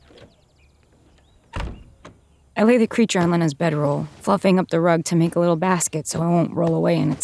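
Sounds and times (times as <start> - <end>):
faint squeaky creaks: 0.0 - 7.2
rustling of movement: 0.0 - 7.2
heavy door thudding shut: 1.5 - 2.2
speech: 2.6 - 7.2.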